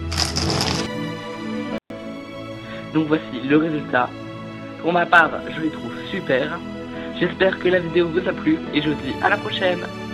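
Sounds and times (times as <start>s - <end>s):
plastic packaging of a toy soldiers set crackling as it is unboxed: 0.0s - 0.9s
speech: 2.9s - 10.0s.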